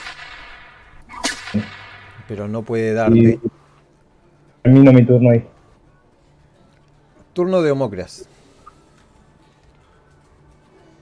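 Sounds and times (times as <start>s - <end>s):
whip-like lash sound effect: 0.0s - 2.2s
faint noise: 0.0s - 10.9s
speech: 1.5s - 3.6s, 4.6s - 5.5s, 7.4s - 8.4s.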